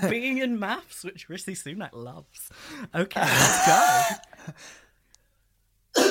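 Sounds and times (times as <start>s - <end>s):
speech: 0.0s - 4.8s
person coughing: 3.2s - 4.3s.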